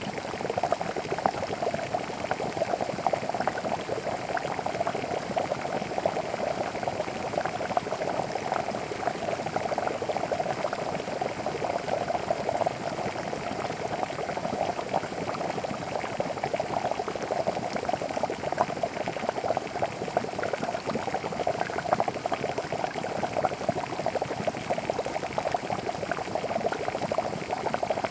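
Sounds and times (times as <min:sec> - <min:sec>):
water bubbling and boiling: 0:00.0 - 0:28.0.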